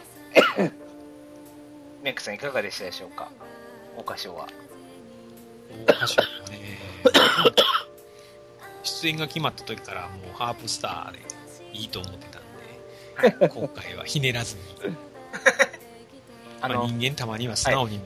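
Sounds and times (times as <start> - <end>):
harsh hacking coughs: 0.3 - 0.8, 5.9 - 7.9, 15.3 - 15.8
speech: 0.6 - 0.8, 2.1 - 4.8, 5.7 - 7.8, 8.9 - 12.4, 13.2 - 15.1, 16.6 - 18.0.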